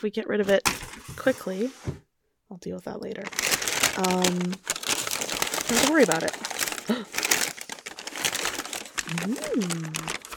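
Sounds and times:
speech: 0:00.0 - 0:04.7, 0:05.7 - 0:07.2, 0:09.1 - 0:10.2
paper wrapping crinkling and being shaken: 0:03.2 - 0:10.3
person humming: 0:09.1 - 0:10.2.

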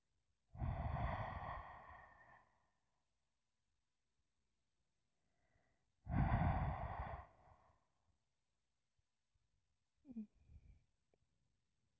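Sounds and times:
heavy breathing: 0:00.6 - 0:02.9, 0:05.4 - 0:08.1.

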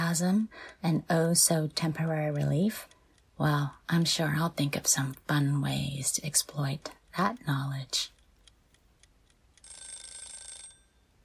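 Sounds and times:
soft ticks: 0:00.0 - 0:09.9
speech: 0:00.1 - 0:08.2
timer alarm ringing with a bright shrill metallic ring: 0:09.5 - 0:11.2.

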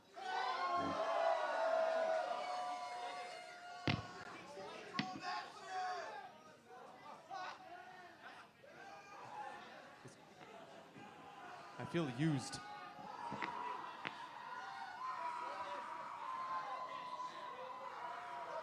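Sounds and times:
concert crowd cheering and yelling: 0:00.0 - 0:06.3, 0:10.5 - 0:18.6
speech: 0:11.9 - 0:12.7.

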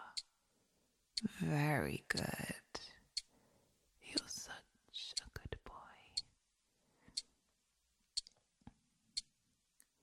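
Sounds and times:
speech: 0:01.3 - 0:02.6
wristwatch ticking: 0:08.1 - 0:08.3, 0:09.1 - 0:09.3.

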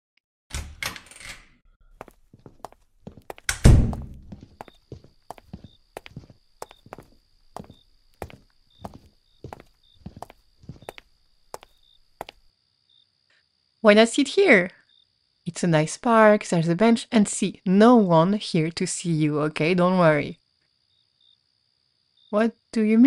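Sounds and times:
footsteps of people walking through a park at night: 0:01.9 - 0:12.5
speech: 0:13.8 - 0:14.8, 0:15.4 - 0:20.4, 0:22.3 - 0:23.0.

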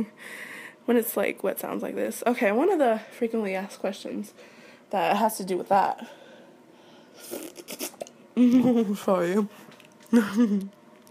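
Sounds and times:
speech: 0:00.0 - 0:06.2, 0:07.2 - 0:10.8
squishy wet chewing of Jell-O: 0:09.7 - 0:11.0.

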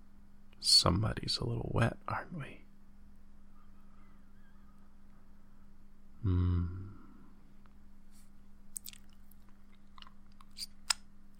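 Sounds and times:
low steady hum: 0:00.0 - 0:11.3
speech: 0:00.8 - 0:02.7, 0:06.2 - 0:06.8
person chewing and eating food: 0:08.7 - 0:11.0.

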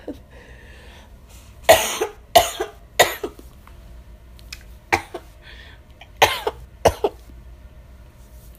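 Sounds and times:
harsh coughs: 0:01.7 - 0:03.4, 0:04.9 - 0:05.3, 0:06.2 - 0:07.2.

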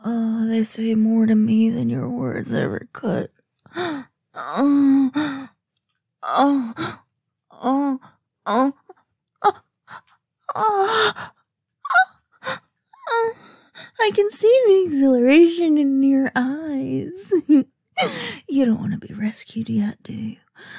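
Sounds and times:
speech: 0:00.0 - 0:05.4, 0:06.3 - 0:07.0, 0:07.6 - 0:08.8, 0:10.6 - 0:11.4, 0:13.1 - 0:20.7
labored breathing and gasping: 0:03.6 - 0:05.6, 0:06.4 - 0:07.1, 0:08.0 - 0:14.0, 0:18.0 - 0:18.5.

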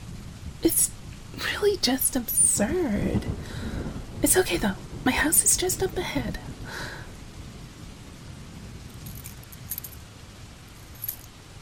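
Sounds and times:
heavy rain: 0:00.0 - 0:11.6
speech: 0:00.6 - 0:01.0, 0:01.6 - 0:07.0
brief bright metallic jingles: 0:08.9 - 0:10.1, 0:10.7 - 0:11.4.

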